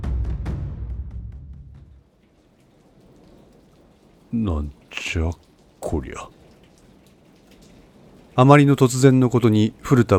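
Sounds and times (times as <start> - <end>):
heavy rain splashing: 1.7 - 10.1
speech: 4.3 - 6.4, 8.4 - 10.1.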